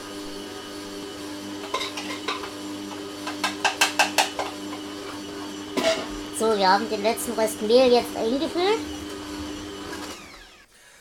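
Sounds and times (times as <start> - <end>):
kitchen food processor kneading bread dough: 0.0 - 10.9
speech: 6.4 - 9.0.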